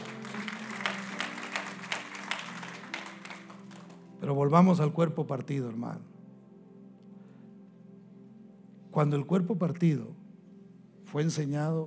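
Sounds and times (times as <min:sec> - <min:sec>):
audience applauding: 0:00.0 - 0:04.1
low musical drone: 0:00.0 - 0:11.8
speech: 0:04.2 - 0:06.2, 0:09.0 - 0:10.2, 0:11.1 - 0:11.8.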